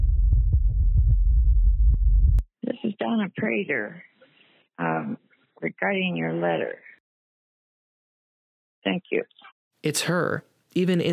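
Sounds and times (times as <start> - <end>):
person's heart pounding in a plane seat: 0.0 - 2.4
speech: 3.1 - 4.1, 4.8 - 6.9, 8.8 - 11.1.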